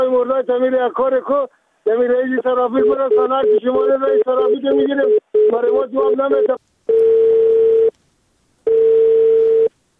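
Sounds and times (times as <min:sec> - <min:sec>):
speech: 0:00.0 - 0:07.2
telephone line tone after a call is cut off: 0:02.8 - 0:06.2, 0:06.9 - 0:07.9, 0:08.7 - 0:09.7.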